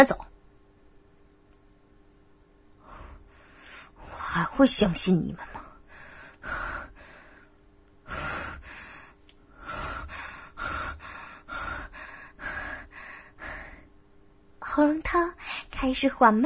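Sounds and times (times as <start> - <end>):
speech: 0.0 - 0.3, 4.4 - 5.5, 15.8 - 16.4
tense man breathing rapidly and heavily: 5.5 - 13.9.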